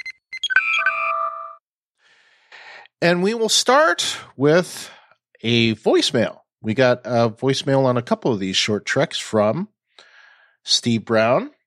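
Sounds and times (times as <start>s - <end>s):
starship communication hailing signal electronic beeps: 0.0s - 1.6s
speech: 3.0s - 9.7s, 10.6s - 11.6s.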